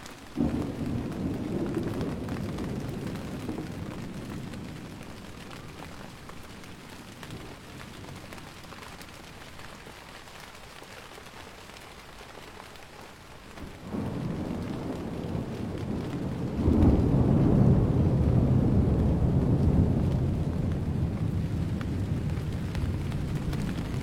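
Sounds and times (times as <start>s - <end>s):
steady rain in a typhoon thunderstorm: 0.0s - 24.0s
deep rolling thunder from a typhoon thunderstorm: 0.4s - 8.2s, 13.6s - 24.0s.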